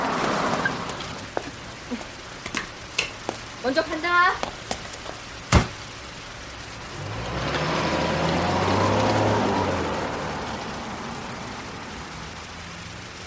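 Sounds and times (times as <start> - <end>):
sudden rain shower hissing: 0.0 - 13.2
speech: 3.6 - 4.6
car engine rumbling past on the wet road: 6.7 - 13.2.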